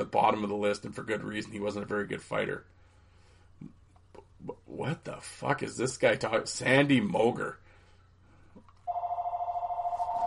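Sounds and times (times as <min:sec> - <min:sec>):
speech: 0:00.0 - 0:02.8, 0:04.4 - 0:07.6
mobile phone ringing with warbling electronic tone: 0:08.9 - 0:10.2.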